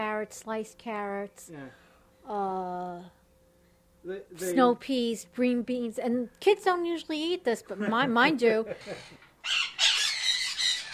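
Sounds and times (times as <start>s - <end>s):
speech: 0.2s - 3.2s, 4.0s - 9.7s
pet bird squawking: 8.8s - 10.9s.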